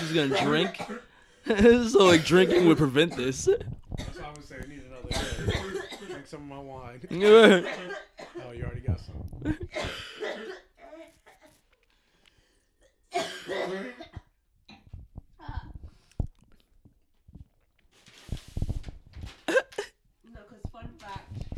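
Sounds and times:
person clearing throat: 0.0s - 4.2s, 5.1s - 6.2s, 7.1s - 8.4s, 13.2s - 14.9s, 19.5s - 20.0s
person coughing in harsh hacking bursts: 0.0s - 4.2s, 5.1s - 6.3s, 7.1s - 8.5s, 9.5s - 11.5s, 13.1s - 14.2s, 19.5s - 20.0s
speech: 0.1s - 10.5s, 13.2s - 14.2s.

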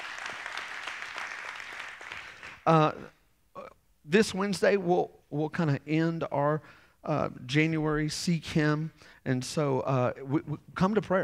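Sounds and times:
audience applause: 0.0s - 2.6s
speech: 2.6s - 3.2s, 4.1s - 11.2s.

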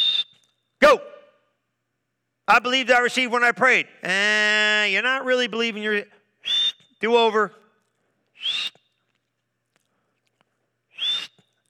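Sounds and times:
sharp mouth whistle blasts imitating a coach's whistle: 0.0s - 1.4s, 6.4s - 7.0s, 8.4s - 8.9s, 10.9s - 11.5s
speech: 2.5s - 6.2s, 7.0s - 7.6s.

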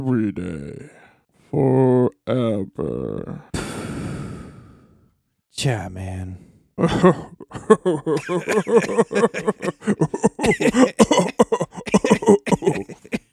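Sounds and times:
speech: 0.0s - 3.5s, 5.6s - 11.0s
harsh coughs from smoking a pipe: 6.8s - 7.4s, 8.1s - 13.3s
several people laughing while passing a pipe: 6.8s - 13.2s.

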